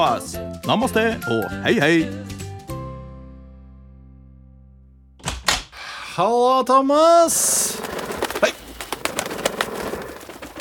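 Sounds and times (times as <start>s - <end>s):
speech: 0.0s - 2.3s, 6.2s - 7.7s
pigeons cooing indoors: 7.4s - 10.5s
wings rustling or flapping: 7.4s - 10.5s.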